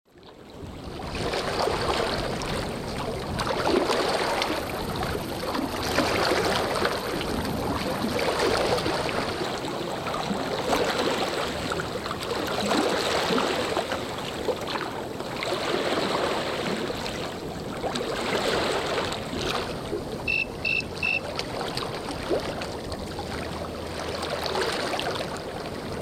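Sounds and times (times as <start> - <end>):
lake ambience at dusk: 0.2 - 25.9.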